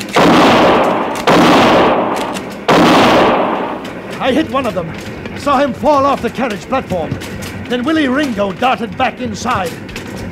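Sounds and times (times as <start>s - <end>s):
gunshots from a gun fired during a shootout on a small train: 0.0s - 5.1s
speech: 4.3s - 9.9s.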